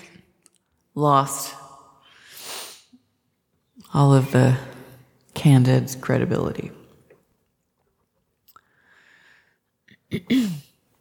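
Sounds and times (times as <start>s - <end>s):
speech: 1.0s - 1.6s, 3.9s - 4.7s, 5.4s - 6.8s
soft nasal sniffle: 2.2s - 3.0s
short loud gruff throat clearing: 9.9s - 10.7s.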